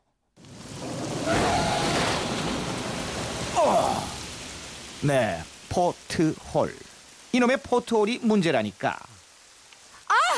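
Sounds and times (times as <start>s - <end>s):
sea waves crashing on a stormy night at the South Sea coast of Korea: 0.4s - 5.5s
storm rain on a stormy night at the South Sea coast of Korea: 0.4s - 10.3s
speech: 5.0s - 9.1s.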